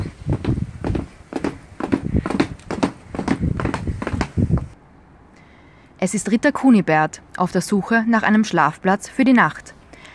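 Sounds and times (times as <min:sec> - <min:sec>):
horse galloping: 0:00.0 - 0:04.8
speech: 0:06.0 - 0:09.7.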